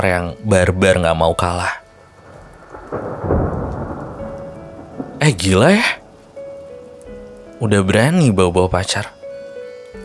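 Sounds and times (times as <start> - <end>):
speech: 0.0 - 1.8, 2.9 - 3.4, 5.2 - 6.0, 7.6 - 9.2
steady rain hissing: 0.4 - 10.0
deep roll of thunder rumbling: 2.0 - 7.7.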